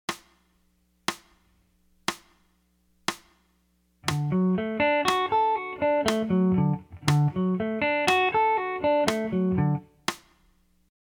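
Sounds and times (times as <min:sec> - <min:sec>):
arpeggiated chords: 0:04.1 - 0:09.8.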